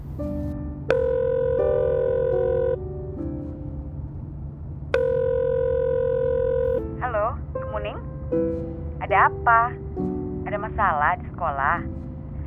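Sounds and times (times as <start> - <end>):
constant low hum: 0.0 - 12.4
phone ringback tone while a call connects: 0.9 - 2.9, 5.0 - 6.9
speech: 9.2 - 9.8, 10.6 - 12.0.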